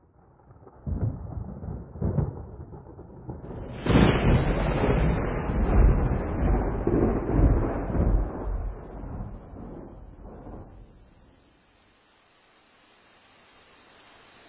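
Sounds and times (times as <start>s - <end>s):
rolling thunder during a storm: 0.2s - 11.5s.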